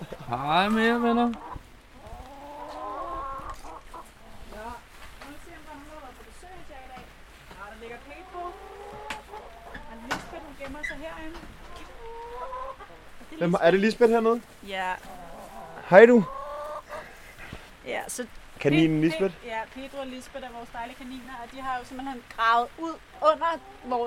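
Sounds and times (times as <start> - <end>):
hens squawking in a hen house: 0.0 - 4.8, 7.6 - 13.4, 14.9 - 17.3, 23.0 - 24.0
hens clucking in a hen house: 0.0 - 24.0
speech: 0.3 - 1.5, 13.4 - 15.2, 15.9 - 16.4, 17.8 - 24.0.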